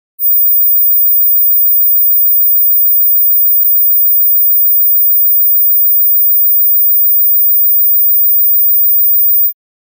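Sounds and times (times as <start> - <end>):
mobile phone ringtone at 17 kHz frequency: 0.2 - 9.6.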